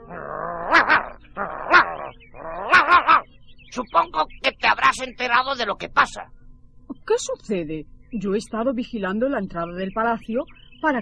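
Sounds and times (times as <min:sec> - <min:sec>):
dog barking while guarding a garden gate: 0:00.7 - 0:02.0, 0:02.7 - 0:03.2
speech: 0:03.8 - 0:06.4, 0:07.1 - 0:10.9.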